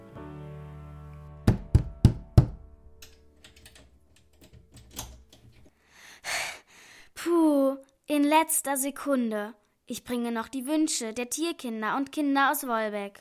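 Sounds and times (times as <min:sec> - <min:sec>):
sharp knocking on a door: 0:01.4 - 0:02.6
speech: 0:08.1 - 0:13.2.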